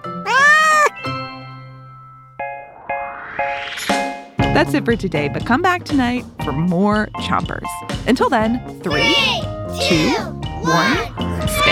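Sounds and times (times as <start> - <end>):
cat meowing: 0.1 - 1.0
speech: 4.6 - 11.7.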